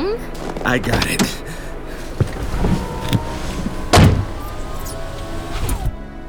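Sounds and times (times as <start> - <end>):
steady car engine hum: 0.0 - 6.0
speech: 0.2 - 1.4
car power window whirring: 0.4 - 6.0
sharp mechanical clunks: 0.4 - 6.0
loud thump: 2.2 - 4.7.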